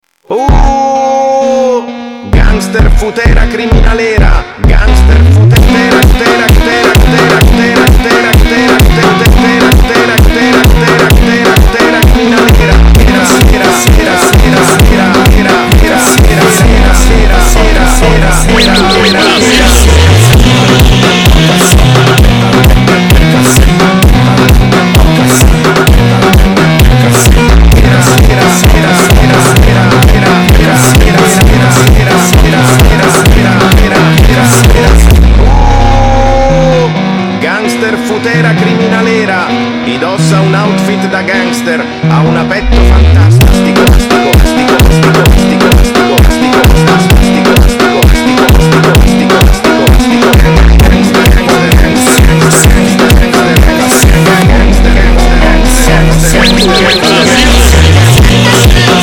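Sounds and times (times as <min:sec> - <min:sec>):
gangster criminal funk music: 0:00.3 - 0:59.0.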